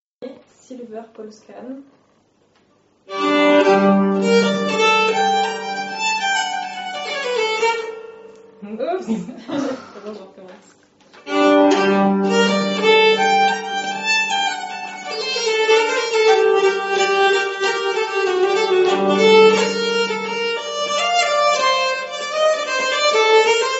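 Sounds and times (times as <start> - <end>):
nyckelharpa playing a fast piece: 3.1 - 9.0, 11.2 - 23.7.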